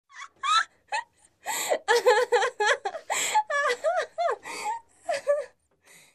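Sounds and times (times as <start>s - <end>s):
woman laughing hilariously: 0.1s - 1.2s, 1.8s - 5.6s.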